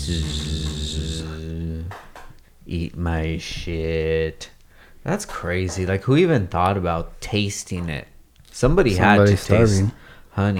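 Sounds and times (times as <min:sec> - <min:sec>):
voice imitating buzzing bees: 0:00.0 - 0:02.1
speech: 0:00.1 - 0:01.1, 0:02.7 - 0:10.5.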